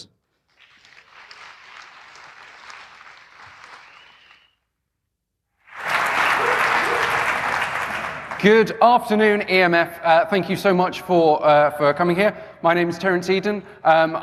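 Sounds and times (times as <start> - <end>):
audience applause welcoming a speaker: 0.5 - 4.5, 5.6 - 8.7
speech: 8.4 - 14.2.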